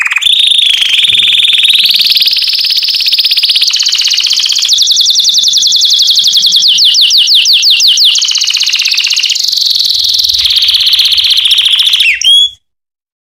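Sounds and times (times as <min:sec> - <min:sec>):
canary song with descending sweeps and rolling trills: 0:00.0 - 0:12.7.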